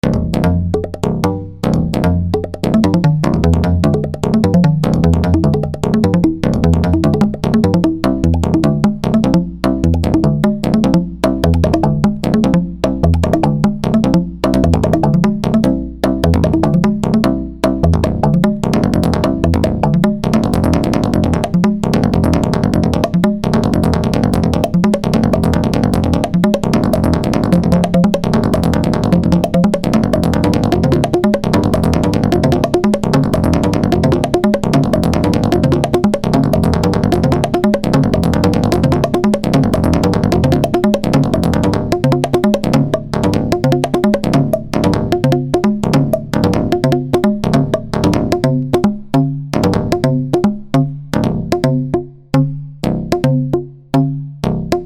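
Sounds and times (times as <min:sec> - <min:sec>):
tube drum solo played with paddle: 0:00.0 - 0:54.8.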